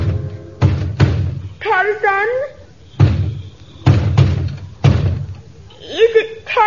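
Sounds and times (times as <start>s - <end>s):
heavy booming knocks on a door: 0.0s - 1.5s, 3.0s - 5.3s
speech: 2.0s - 2.6s.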